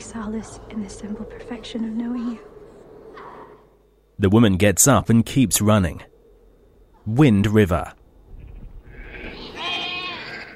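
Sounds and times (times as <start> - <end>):
low steady noise: 0.0 - 10.5
speech: 0.1 - 2.6, 4.2 - 6.1, 7.0 - 8.0
flock of sheep bleating huddled in the snow: 8.9 - 10.5.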